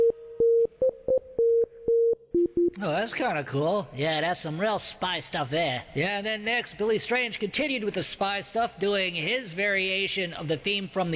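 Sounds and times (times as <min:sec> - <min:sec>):
electronic Morse code beeps: 0:00.0 - 0:02.8
speech: 0:02.8 - 0:11.1.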